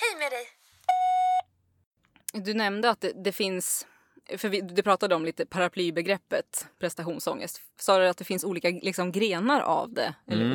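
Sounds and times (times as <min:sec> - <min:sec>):
speech: 0:00.3 - 0:00.6, 0:02.3 - 0:10.5
electronic phone beep of an incoming call: 0:00.9 - 0:01.4.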